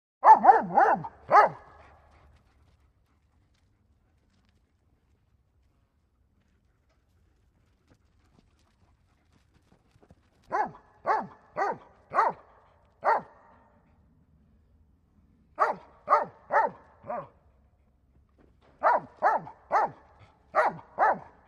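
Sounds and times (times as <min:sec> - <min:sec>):
mixed-breed dog barking: 0:00.2 - 0:02.0, 0:10.5 - 0:13.7, 0:15.6 - 0:17.4, 0:18.8 - 0:21.4.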